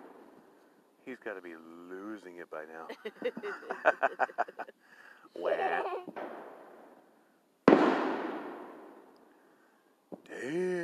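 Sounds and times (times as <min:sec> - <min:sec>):
speech: 0:01.1 - 0:06.4
laughter: 0:02.8 - 0:06.1
fireworks exploding at a Fourth of July celebration: 0:05.9 - 0:06.9, 0:07.6 - 0:09.1.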